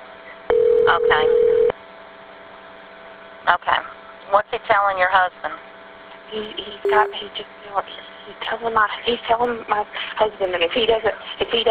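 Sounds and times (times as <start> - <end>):
telephone dialing tone: 0.5 - 1.7, 6.9 - 7.2
speech: 4.6 - 5.6, 6.3 - 11.6.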